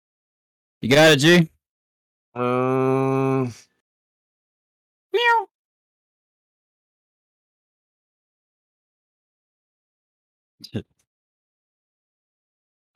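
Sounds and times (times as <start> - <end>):
speech: 0.8 - 1.5, 2.4 - 3.7, 10.7 - 10.9
cat meowing: 5.2 - 5.5.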